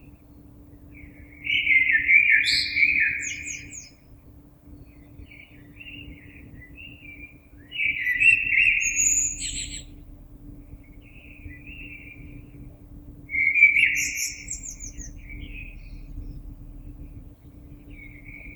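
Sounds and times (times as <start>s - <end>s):
faint steady hum: 0.0s - 18.5s
common blackbird singing a loud fluted warble with twittered tail notes: 7.8s - 18.5s.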